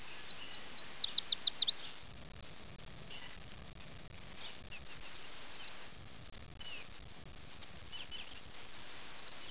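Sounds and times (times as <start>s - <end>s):
yellow warbler songs: 0.0s - 2.0s, 3.1s - 3.4s, 4.4s - 5.9s, 6.6s - 7.0s, 7.9s - 9.4s.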